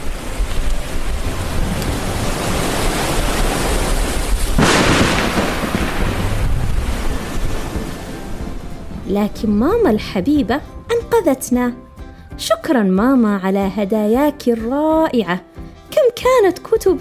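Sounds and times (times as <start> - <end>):
crashing surf: 0.0 - 10.1
rough sea roar: 0.0 - 11.1
gusting wind: 0.0 - 12.4
speech: 9.1 - 11.8, 12.4 - 15.5, 16.2 - 16.9.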